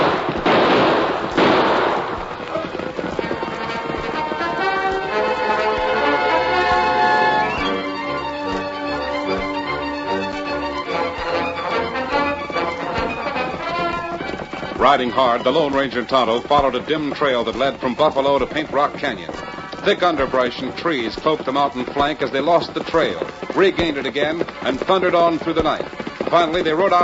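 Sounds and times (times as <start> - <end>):
gunshots fired over the heads of pursuing riders: 0.0 - 7.7
dramatic orchestral music: 2.8 - 15.0
speech: 14.9 - 27.0.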